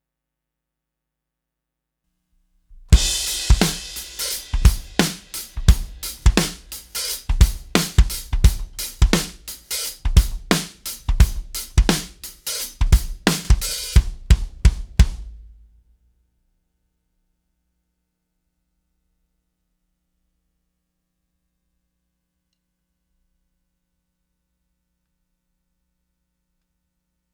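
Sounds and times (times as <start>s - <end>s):
live drums: 2.8s - 15.7s.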